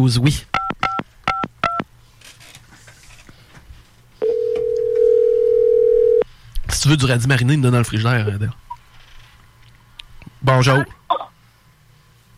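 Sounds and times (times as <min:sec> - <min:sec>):
speech: 0:00.0 - 0:00.6, 0:06.8 - 0:08.6, 0:10.4 - 0:11.0
long steady telephone tone: 0:04.2 - 0:06.2.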